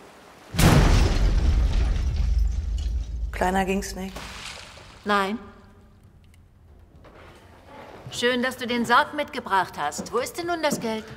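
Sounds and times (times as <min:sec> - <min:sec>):
crackling debris-like noise: 0:00.5 - 0:05.3
loud explosion: 0:00.6 - 0:03.4
speech: 0:03.4 - 0:04.3, 0:05.0 - 0:05.5, 0:08.1 - 0:11.1.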